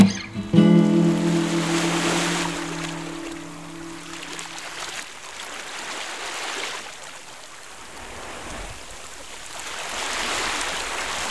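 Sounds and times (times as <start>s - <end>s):
sea waves: 0.0s - 11.2s
steady droning tone: 0.6s - 4.6s.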